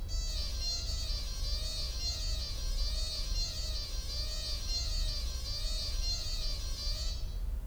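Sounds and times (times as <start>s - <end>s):
kinura organ stop: 0.1s - 7.5s.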